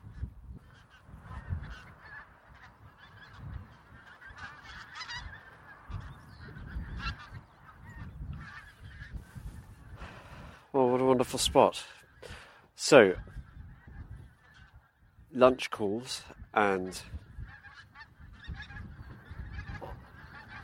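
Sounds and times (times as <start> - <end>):
low rumble of wind across open ground: 0.0 - 11.6, 13.1 - 15.4, 16.2 - 20.6
pink-footed geese calling over marsh: 0.0 - 20.6
speech: 11.2 - 12.0, 12.9 - 13.3, 15.4 - 17.2.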